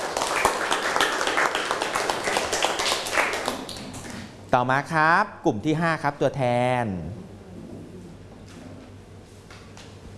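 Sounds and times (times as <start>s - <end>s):
group of people clapping for a classmate: 0.0s - 4.3s
speech: 4.5s - 7.3s.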